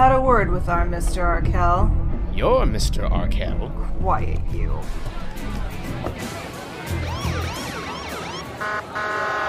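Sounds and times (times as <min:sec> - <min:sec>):
low rumbling background: 0:00.0 - 0:05.0
speech: 0:00.0 - 0:07.2
police car siren: 0:06.9 - 0:09.4.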